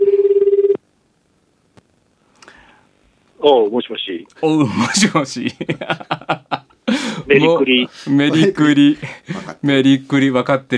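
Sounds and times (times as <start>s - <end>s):
ringback tone of an outgoing telephone call: 0.0s - 0.8s
speech: 3.4s - 6.2s, 7.3s - 10.7s
laughter: 4.8s - 9.6s.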